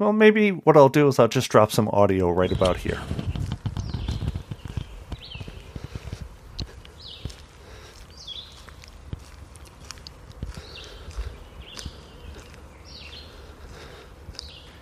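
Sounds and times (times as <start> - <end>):
speech: 0.0 - 3.2
birds chirping: 1.8 - 14.8
footsteps crunching outdoors at a walking pace: 2.2 - 14.8.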